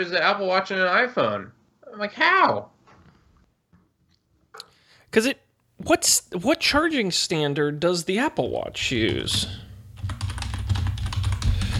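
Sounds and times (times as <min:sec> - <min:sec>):
speech: 0:00.0 - 0:02.7, 0:04.6 - 0:09.7
low hum: 0:05.8 - 0:11.7
rapid typing on a computer keyboard: 0:10.0 - 0:11.7.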